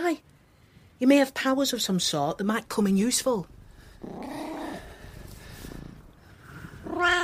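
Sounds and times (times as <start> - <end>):
speech: 0.1 - 0.3, 1.0 - 4.4
low rumbling growl: 3.4 - 7.2
cat meowing: 6.8 - 7.2.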